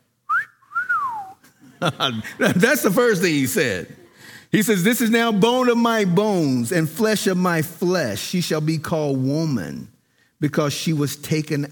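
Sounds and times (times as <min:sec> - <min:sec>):
person whistling a short two-part tune: 0:00.3 - 0:01.4
laughter: 0:01.5 - 0:04.2
speech: 0:01.8 - 0:11.7.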